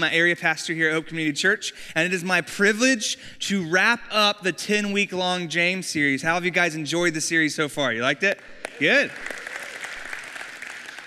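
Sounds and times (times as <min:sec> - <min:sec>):
speech: 0:00.0 - 0:09.4
audience applause: 0:08.3 - 0:11.0.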